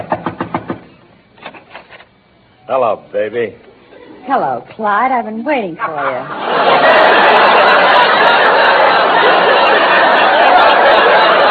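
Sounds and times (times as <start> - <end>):
knocking on a door: 0.0 - 0.9
speech: 2.7 - 8.4
laughter: 5.8 - 11.4.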